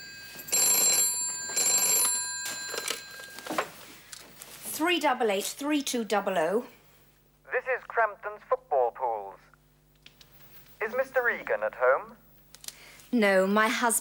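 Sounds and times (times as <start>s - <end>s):
telephone ringing with metallic bell trilling: 0.0s - 3.9s
speech: 4.8s - 6.8s, 7.6s - 8.6s, 10.9s - 12.2s, 13.1s - 13.9s.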